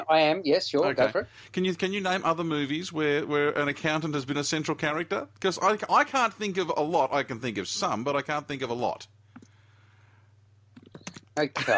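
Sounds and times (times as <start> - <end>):
speech: 0.0 - 9.2, 11.4 - 11.7
faint low electrical hum: 0.0 - 11.7
quiet computer keyboard typing with soft key clicks: 10.8 - 11.3.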